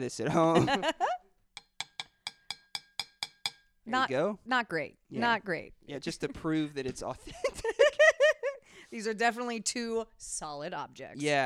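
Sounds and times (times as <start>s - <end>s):
speech: 0.0s - 1.2s, 3.9s - 8.0s, 8.9s - 11.4s
two drinking glasses clinking together: 1.6s - 3.7s.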